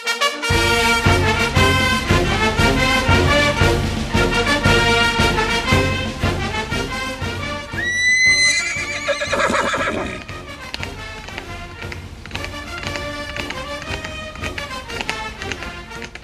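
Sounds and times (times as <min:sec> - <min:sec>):
horse galloping hoofbeats: 0:00.5 - 0:16.2
horse whinnying: 0:07.8 - 0:10.3.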